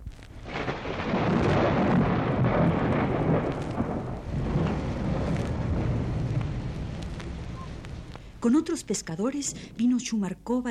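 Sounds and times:
heavy rolling thunder: 0.0s - 8.4s
speech: 8.4s - 10.6s.

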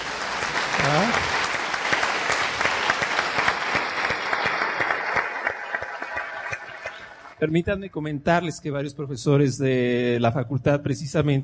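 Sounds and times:
room full of people applauding: 0.0s - 7.4s
speech: 7.4s - 11.4s.

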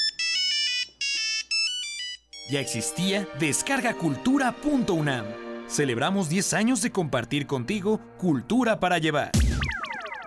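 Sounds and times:
old mobile phone ringtone with synthetic chiming melody: 0.0s - 2.8s
speech: 2.5s - 9.5s.

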